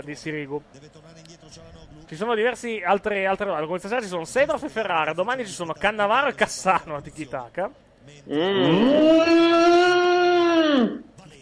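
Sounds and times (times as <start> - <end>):
speech: 0.0 - 10.0
cow mooing: 8.3 - 11.0.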